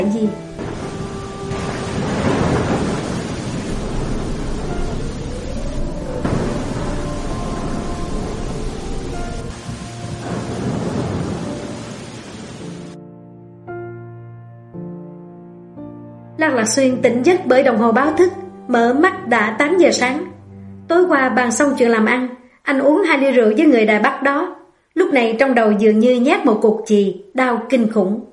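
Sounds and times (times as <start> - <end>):
heavy rain: 0.0 - 13.0
speech: 0.1 - 0.5, 16.5 - 20.3, 20.9 - 28.3
deep rolling thunder: 0.4 - 13.0
soft sustained tonal drone: 4.3 - 9.8.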